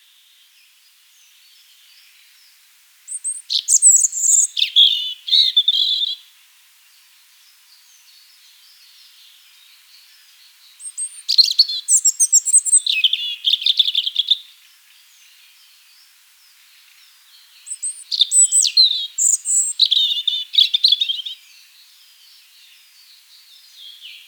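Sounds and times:
Erithacus rubecula European robin song: 0:03.1 - 0:06.3, 0:07.8 - 0:15.8, 0:16.5 - 0:24.2.

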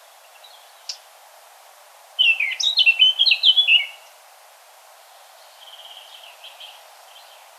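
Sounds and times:
Eurasian blackcap warbling: 0:00.0 - 0:01.1, 0:02.2 - 0:04.2, 0:05.0 - 0:07.5.

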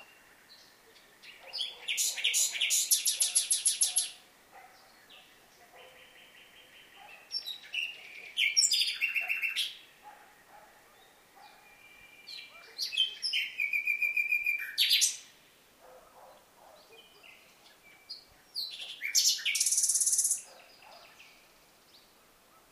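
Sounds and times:
Common nightingale singing, Luscinia megarhynchos: 0:00.0 - 0:10.1, 0:10.9 - 0:15.4, 0:16.4 - 0:22.2.

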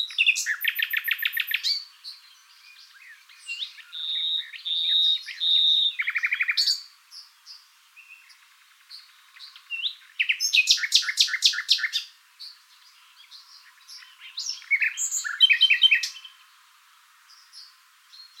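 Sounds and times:
Common nightingale Luscinia megarhynchos singing: 0:00.0 - 0:18.3.

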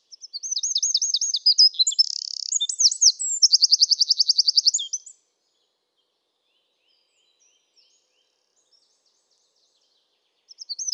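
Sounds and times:
Eurasian wren Troglodytes troglodytes singing: 0:00.2 - 0:05.1, 0:10.5 - 0:10.9.

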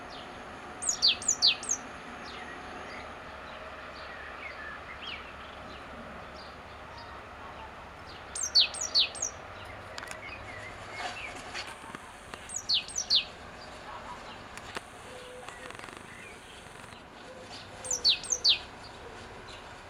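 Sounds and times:
faint chirping: 0:00.2 - 0:03.2, 0:04.0 - 0:10.8, 0:12.4 - 0:14.4, 0:17.8 - 0:19.0
great tit calls: 0:00.8 - 0:03.2, 0:04.0 - 0:11.5, 0:12.4 - 0:19.7.

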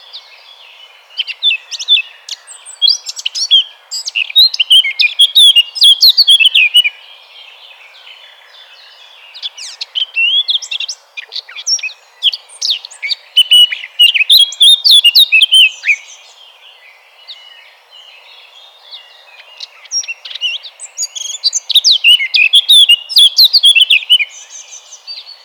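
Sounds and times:
Eurasian blackcap Sylvia atricapilla song with dense warbling, sharp chirps and fluty whistles: 0:00.0 - 0:07.1, 0:08.0 - 0:16.4, 0:18.4 - 0:25.4.

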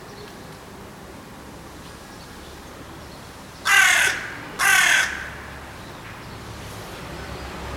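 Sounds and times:
faint background hiss: 0:00.0 - 0:07.7
carrion crow Corvus corone cawing: 0:03.6 - 0:05.6.

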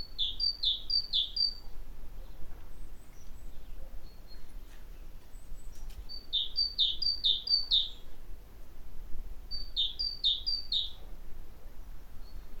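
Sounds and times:
great tit Parus major singing see-saw double notes: 0:00.0 - 0:08.1, 0:09.5 - 0:11.0.

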